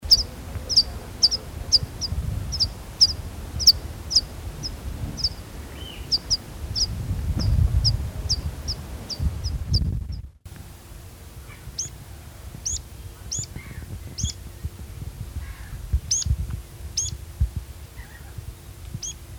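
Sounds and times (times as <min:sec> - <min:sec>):
rock pipit calling: 0:00.0 - 0:09.8, 0:11.4 - 0:12.0, 0:12.6 - 0:14.4, 0:15.4 - 0:16.3, 0:16.9 - 0:17.2, 0:17.9 - 0:18.4, 0:19.0 - 0:19.2.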